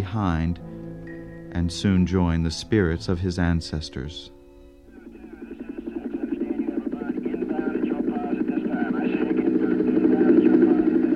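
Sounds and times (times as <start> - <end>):
speech: 0.0 - 0.8, 1.5 - 4.4
helicopter's droning engine hum: 0.0 - 11.1
descending helicopter's rotor thumping in a rapid steady chop: 5.2 - 11.1.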